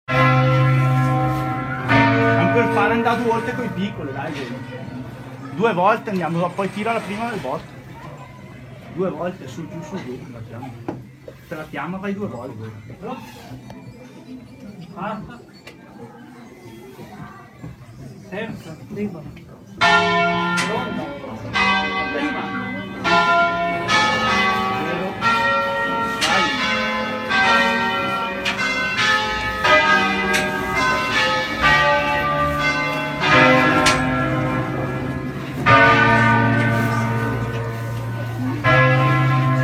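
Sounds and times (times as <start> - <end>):
church bells ringing: 0.1 - 10.4, 19.8 - 39.6.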